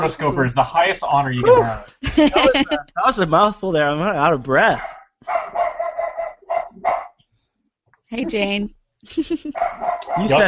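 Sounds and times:
laughter: 0.0s - 4.8s, 9.1s - 10.4s
speech: 0.0s - 5.4s, 8.1s - 10.4s
female dog barking excitedly: 4.6s - 7.2s, 9.5s - 10.4s.

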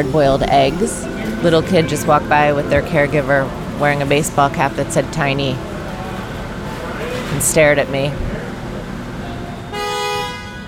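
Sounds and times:
speech: 0.0s - 5.7s, 7.3s - 8.3s
street noise: 0.0s - 10.6s
car horn honking: 9.6s - 10.6s.

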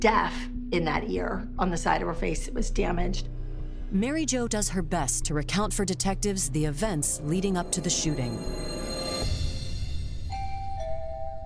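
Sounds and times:
speech: 0.0s - 9.0s
doorbell ringing with a two-note ding-dong: 10.3s - 11.4s.

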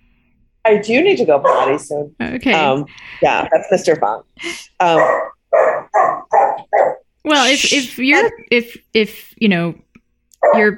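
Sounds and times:
speech: 0.7s - 5.8s, 7.3s - 10.7s
dog barking: 1.4s - 1.8s, 4.9s - 7.1s, 10.4s - 10.7s.

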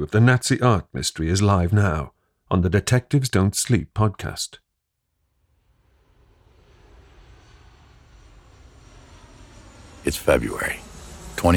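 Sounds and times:
speech: 0.0s - 4.6s, 10.0s - 11.5s
airplane engine roaring as a short-haul flight touches down at Pisa Airport: 6.2s - 11.5s.

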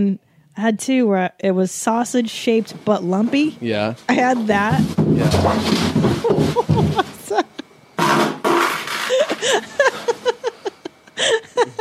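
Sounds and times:
speech: 0.0s - 7.1s
person tumbling down stairs: 4.1s - 10.4s
laughter: 6.1s - 7.6s, 9.1s - 11.7s.

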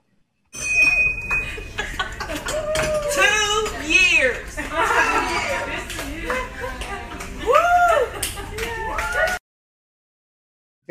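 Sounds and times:
bright hand bell rung by a woman celebrating beating cancer: 0.6s - 1.8s
people laughing: 1.4s - 3.3s, 4.5s - 9.3s
crowd cheering: 2.2s - 3.6s, 4.7s - 9.4s.

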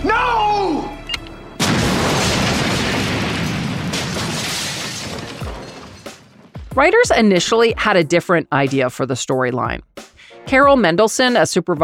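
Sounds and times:
bombs exploding around an apartment complex: 1.6s - 6.6s
shattering debris: 1.6s - 6.6s
speech: 6.8s - 11.8s.

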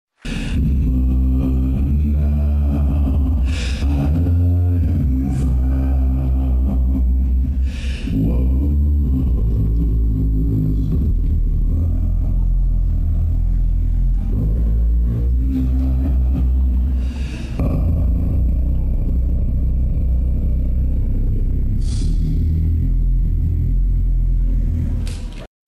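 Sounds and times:
breaths between sung phrases: 0.2s - 0.6s, 3.3s - 4.0s, 7.3s - 8.2s, 16.7s - 17.6s
extremely deep bass male voice singing slow sustained notes unaccompanied: 0.2s - 25.4s.

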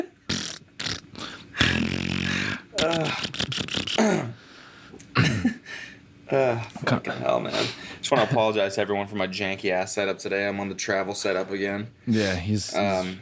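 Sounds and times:
video game prank weapon fart sound effects: 0.0s - 4.1s
speech: 2.8s - 4.4s, 6.3s - 13.2s.

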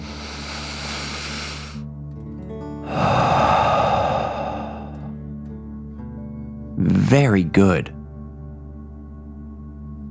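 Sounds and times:
deep breath in and blown out through the mouth in a calming breathing exercise: 0.0s - 1.9s, 2.8s - 5.3s
gentle steady music: 0.0s - 10.0s
speech: 7.1s - 8.0s.

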